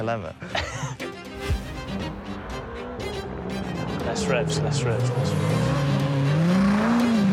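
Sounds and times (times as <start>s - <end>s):
speech: 0.0s - 1.0s, 4.1s - 5.9s
rally car engine revving: 2.2s - 7.3s.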